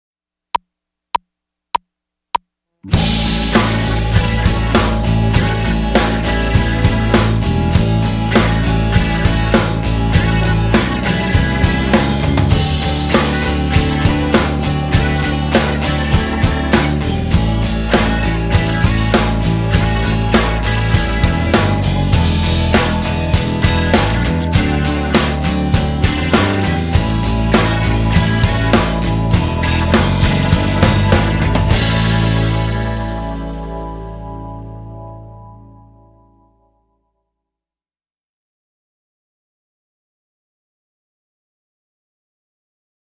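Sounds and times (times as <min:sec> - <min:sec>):
straight eight blues backing without guitar: 0:02.8 - 0:36.5.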